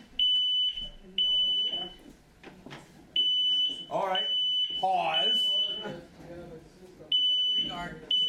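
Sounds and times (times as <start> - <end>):
people talking and reacting: 0.0 - 3.0, 3.6 - 8.2
smoke alarm beeping: 0.2 - 2.0, 3.2 - 5.8, 7.1 - 8.2.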